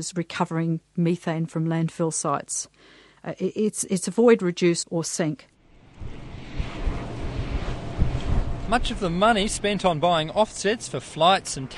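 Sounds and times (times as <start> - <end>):
speech: 0.0 - 6.2, 8.7 - 11.7
low buffeting thumps of wind turbines: 5.6 - 11.1
wind turbines whooshing on a wind farm on hills: 5.6 - 11.7.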